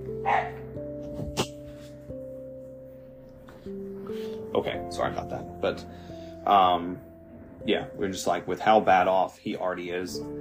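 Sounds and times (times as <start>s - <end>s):
dog barking at someone outside: 0.2s - 0.8s
speech: 4.6s - 10.3s.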